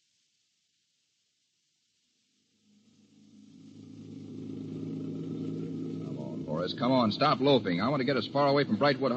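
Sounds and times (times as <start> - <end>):
car engine humming as the car pulls away and picks up speed: 2.8 - 9.1
speech: 6.6 - 9.1.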